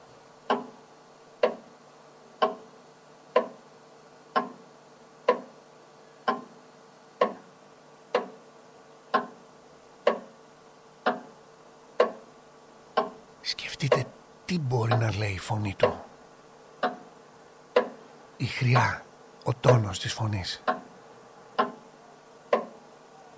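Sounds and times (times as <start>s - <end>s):
wall clock ticking: 0.5s - 0.7s, 1.4s - 1.6s, 2.4s - 2.6s, 3.3s - 3.6s, 4.4s - 4.6s, 5.3s - 5.5s, 6.3s - 6.5s, 7.2s - 7.4s, 8.1s - 8.3s, 9.1s - 9.4s, 10.1s - 10.3s, 11.0s - 11.3s, 12.0s - 12.2s, 13.0s - 13.2s, 14.8s - 16.0s, 16.8s - 17.0s, 17.8s - 18.0s, 19.6s - 20.9s, 21.6s - 21.8s, 22.5s - 22.7s
speech: 13.5s - 16.1s, 18.4s - 20.8s.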